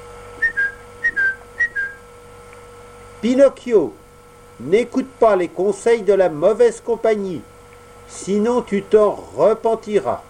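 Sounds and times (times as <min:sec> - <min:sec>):
faint steady hum: 0:00.0 - 0:10.2
white blackbird perched on a hedge whistling: 0:00.4 - 0:02.1
speech: 0:03.2 - 0:04.0, 0:04.6 - 0:07.5, 0:08.1 - 0:10.2.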